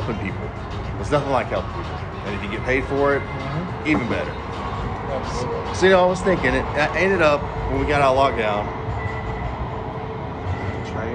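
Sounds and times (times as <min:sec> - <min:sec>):
train rumbling past: 0:00.0 - 0:11.1
speech: 0:00.1 - 0:08.8.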